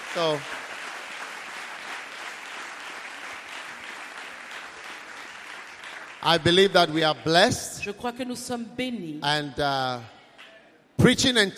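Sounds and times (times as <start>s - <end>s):
congregation clapping at a church service: 0.0s - 7.7s
speech: 0.1s - 0.6s, 6.2s - 10.2s, 11.0s - 11.5s.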